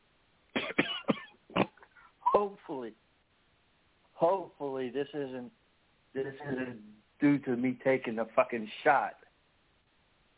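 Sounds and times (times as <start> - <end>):
harsh raspy coughs: 0.5 - 2.1
speech: 2.4 - 3.1, 4.2 - 9.2.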